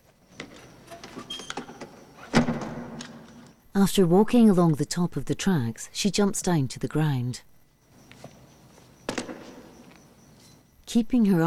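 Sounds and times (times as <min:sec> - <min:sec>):
truck cab door closing: 0:00.9 - 0:03.3
speech: 0:03.8 - 0:07.5, 0:10.9 - 0:11.4.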